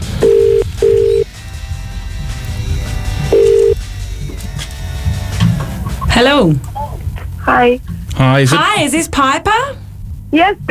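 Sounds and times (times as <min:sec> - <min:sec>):
telephone ringing tone as a phone call is made: 0:00.0 - 0:01.3, 0:03.3 - 0:03.8
low rumble: 0:00.0 - 0:10.6
speech: 0:06.2 - 0:06.7, 0:07.5 - 0:10.6.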